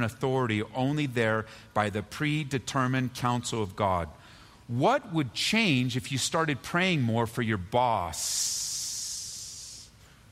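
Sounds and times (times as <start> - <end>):
speech: 0.0 - 8.7
person hissing like a snake: 8.8 - 9.9.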